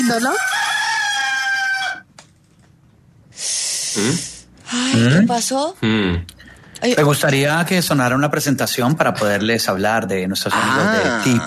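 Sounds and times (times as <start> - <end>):
speech: 0.1 - 0.6, 4.0 - 4.3, 5.0 - 11.4
rooster crowing: 0.1 - 2.1.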